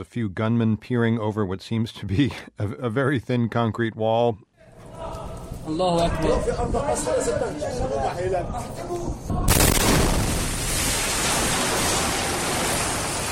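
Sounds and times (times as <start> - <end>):
speech: 0.0 - 4.5, 5.7 - 9.4
bomb explosion in residential neighborhood: 9.5 - 13.0
roaring rumble of debris after bomb explosion: 9.5 - 13.3.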